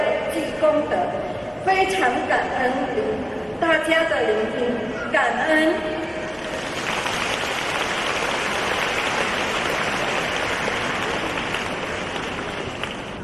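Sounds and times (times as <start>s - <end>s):
speech: 0.8s - 6.0s
applause from a large audience: 6.4s - 13.2s.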